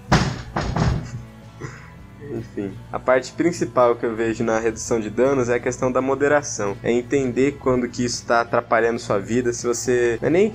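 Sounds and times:
door pushed shut with heavy thuds: 0:00.0 - 0:01.2
speech: 0:02.3 - 0:10.5.

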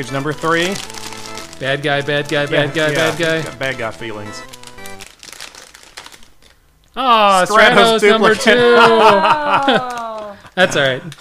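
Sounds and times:
speech: 0:00.0 - 0:01.0, 0:01.6 - 0:04.5, 0:07.0 - 0:09.9, 0:10.6 - 0:11.1
plastic action figure packaging sliced and torn open with car keys: 0:00.0 - 0:06.7, 0:09.6 - 0:10.3
laughter: 0:07.5 - 0:11.1.

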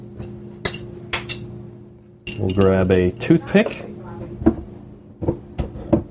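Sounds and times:
steady low hum: 0:00.0 - 0:06.0
iced martini glass clinking as it is picked up and set down: 0:02.2 - 0:03.8
speech: 0:02.4 - 0:03.9.

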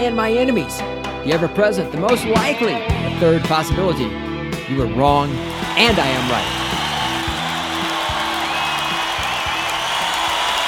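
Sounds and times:
speech: 0:00.0 - 0:06.6
crowd clapping: 0:05.4 - 0:10.6
large crowd roaring and cheering: 0:05.4 - 0:10.6.

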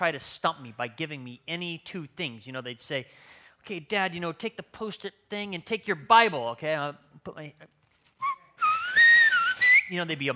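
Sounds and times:
speech: 0:00.0 - 0:07.8, 0:09.9 - 0:10.3
man whistling clear bright notes: 0:08.2 - 0:10.0.

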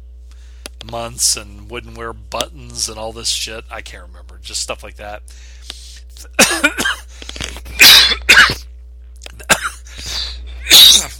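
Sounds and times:
speech: 0:00.8 - 0:07.0
person coughing loudly: 0:06.2 - 0:07.1, 0:07.7 - 0:08.7, 0:09.4 - 0:11.1.

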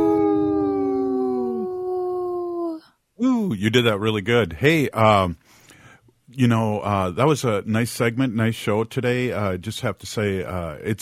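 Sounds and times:
person imitating a wolf howl: 0:00.0 - 0:02.8
lower howling voice: 0:00.0 - 0:03.6
speech: 0:03.2 - 0:05.6, 0:06.3 - 0:11.0.

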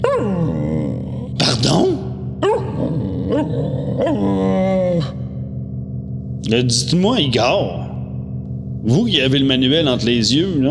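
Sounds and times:
person imitating a dog's whining growl: 0:00.0 - 0:05.3
person imitating dog barking: 0:00.0 - 0:05.3
steady low hum: 0:00.0 - 0:10.6
speech: 0:01.6 - 0:02.0, 0:06.5 - 0:07.8, 0:08.8 - 0:10.6.

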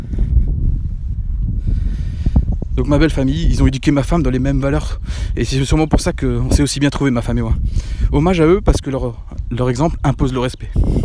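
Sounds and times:
wind buffeting microphone: 0:00.0 - 0:11.0
speech: 0:02.8 - 0:11.0.

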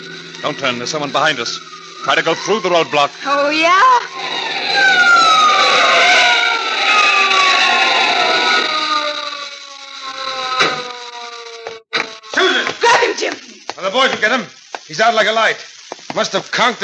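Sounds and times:
car tire squeal under heavy braking: 0:00.0 - 0:13.3
speech: 0:00.4 - 0:05.0, 0:13.8 - 0:16.8.

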